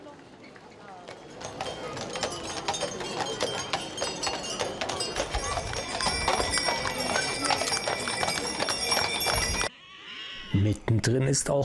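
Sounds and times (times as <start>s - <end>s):
carriages rolling in a procession: 0.0s - 9.7s
horse hooves clopping on a hard road in a procession: 0.6s - 9.7s
indistinct crowd voices murmuring: 0.7s - 9.7s
speech: 10.7s - 11.6s.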